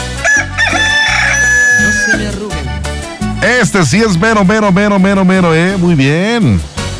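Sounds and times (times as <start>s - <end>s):
rooster crowing: 0.2s - 2.4s
speech: 3.4s - 6.7s.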